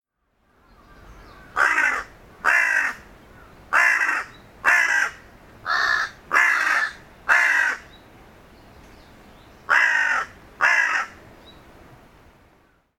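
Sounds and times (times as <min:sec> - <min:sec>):
bird giving harsh hoarse caws: 0:00.5 - 0:08.0, 0:09.7 - 0:11.2.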